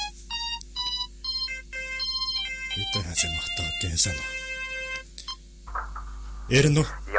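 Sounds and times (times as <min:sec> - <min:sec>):
mobile phone ringtone for an incoming call: 0:00.0 - 0:05.4
speech: 0:02.8 - 0:04.5, 0:06.5 - 0:07.0.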